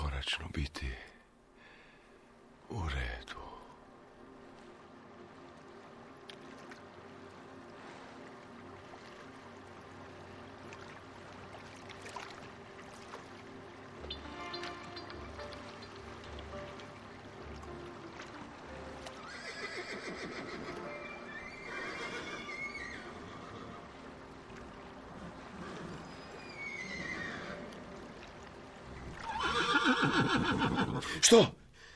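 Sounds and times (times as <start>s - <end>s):
speech: 0.6s - 1.1s, 31.0s - 31.6s
faint watery wash: 1.0s - 31.3s
horses neighing and whinnying: 19.0s - 24.1s, 25.1s - 28.0s, 28.9s - 31.2s.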